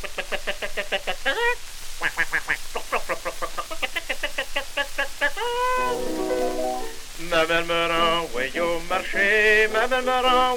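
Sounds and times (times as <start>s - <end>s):
voice imitating a duck's quacking in a song about animals: 0.0s - 6.0s
voice imitating a hen's clucking in a song about animals: 0.0s - 7.0s
speech: 7.4s - 10.5s.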